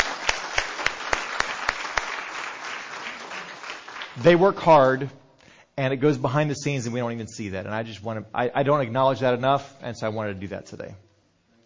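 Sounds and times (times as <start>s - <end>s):
audience applause: 0.0s - 4.4s
louder set of claps keeping a regular beat: 0.0s - 5.1s
speech: 4.2s - 5.2s, 5.8s - 11.0s.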